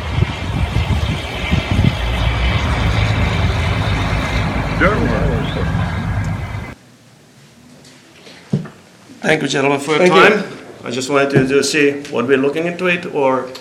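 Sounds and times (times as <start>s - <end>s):
heavy trucks rumbling with deep engine drone: 0.0s - 6.8s
rising whine: 0.0s - 6.8s
speech: 9.3s - 13.6s.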